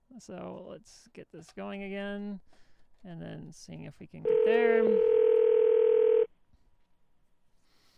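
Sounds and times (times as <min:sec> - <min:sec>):
speech: 0:00.2 - 0:05.2
steady telephone dial tone as a phone line is opened to dial out: 0:04.3 - 0:06.3.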